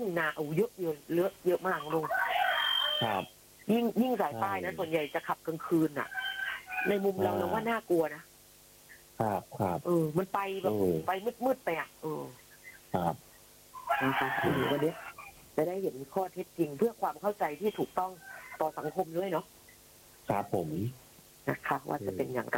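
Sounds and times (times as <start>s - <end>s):
speech: 0.0s - 2.2s, 3.0s - 6.2s, 6.8s - 8.3s, 9.2s - 13.3s, 13.9s - 19.6s, 20.3s - 22.5s
loud raspy rooster crowing: 1.7s - 3.3s, 5.7s - 7.7s, 13.8s - 15.4s, 17.7s - 19.2s.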